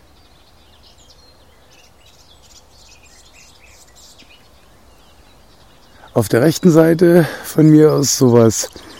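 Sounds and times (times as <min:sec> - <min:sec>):
garden warbler babbling song: 0:00.0 - 0:08.9
steady outdoor noise: 0:00.0 - 0:08.9
speech: 0:06.2 - 0:08.8.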